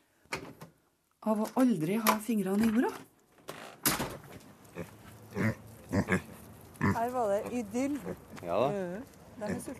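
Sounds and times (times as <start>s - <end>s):
speech: 1.2s - 3.1s, 7.0s - 9.7s
mini pigs grunting and oinking: 4.7s - 7.2s.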